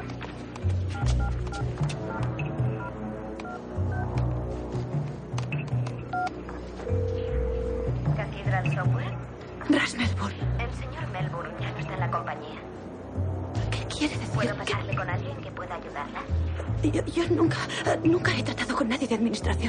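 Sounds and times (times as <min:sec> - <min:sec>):
music: 0:00.0 - 0:19.6
mobile phone dialing beeps: 0:01.0 - 0:04.1, 0:05.5 - 0:08.9.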